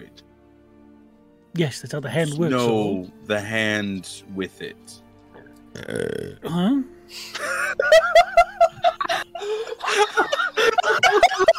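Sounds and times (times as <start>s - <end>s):
speech: 1.6s - 5.0s, 5.8s - 8.8s, 9.4s - 11.5s
loud burp: 5.3s - 6.6s
people chuckling and laughing: 7.3s - 11.5s.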